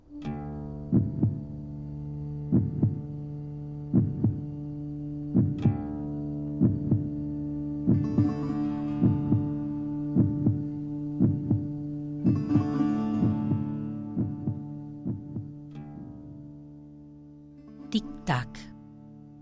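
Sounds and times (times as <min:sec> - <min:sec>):
slow steady heartbeat: 0:00.8 - 0:01.6, 0:02.4 - 0:03.2, 0:03.8 - 0:04.6, 0:05.3 - 0:08.4, 0:09.0 - 0:15.9.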